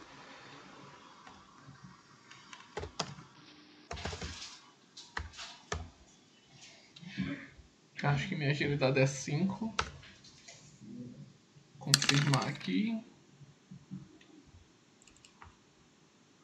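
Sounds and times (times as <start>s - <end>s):
typing on a computer keyboard: 2.3s - 3.2s, 3.9s - 4.4s, 15.0s - 15.5s
speech: 8.0s - 9.9s, 12.1s - 13.1s.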